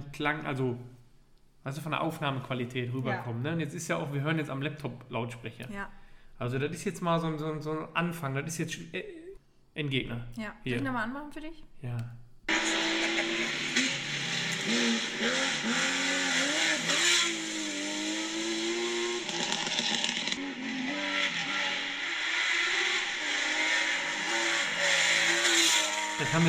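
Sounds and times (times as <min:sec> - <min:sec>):
speech: 0:00.2 - 0:01.0, 0:01.6 - 0:09.2, 0:09.8 - 0:12.2, 0:14.6 - 0:16.0, 0:26.2 - 0:26.4
car engine revving hard with intake noise: 0:12.5 - 0:26.4.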